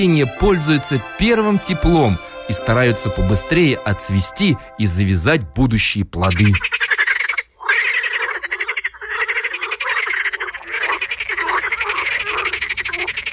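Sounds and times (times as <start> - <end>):
speech: 0.0 - 7.0
dense chorus of frogs newly woken from winter hibernation croaking: 6.3 - 13.3.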